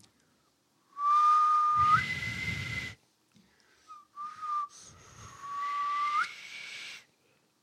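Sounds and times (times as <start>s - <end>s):
loud piercing finger whistle: 0.9s - 3.0s, 3.9s - 7.1s.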